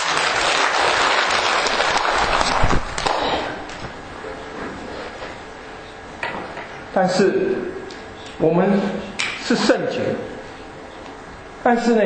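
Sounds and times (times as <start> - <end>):
audience applause: 0.0 - 3.3
speech: 7.0 - 7.8, 8.4 - 10.3, 11.6 - 12.0.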